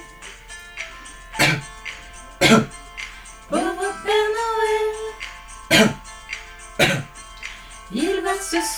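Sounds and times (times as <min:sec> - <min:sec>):
coughing: 0:00.0 - 0:08.7
soft music: 0:00.0 - 0:08.7
throat clearing: 0:01.4 - 0:01.8, 0:02.4 - 0:02.8, 0:05.7 - 0:06.2, 0:06.8 - 0:07.2.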